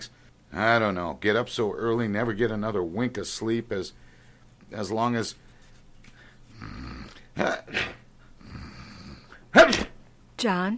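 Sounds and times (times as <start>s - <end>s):
speech: 0.0s - 4.1s, 4.7s - 5.4s, 6.6s - 8.0s, 10.4s - 10.7s
person sneezing: 7.2s - 8.1s, 9.3s - 10.0s.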